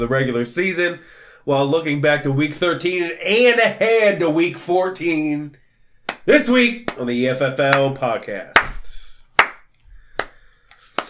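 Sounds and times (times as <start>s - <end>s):
speech: 0.0s - 5.6s, 6.3s - 8.7s
loud sharp hand claps: 6.1s - 7.1s, 7.7s - 7.9s, 8.6s - 8.8s, 9.4s - 11.0s.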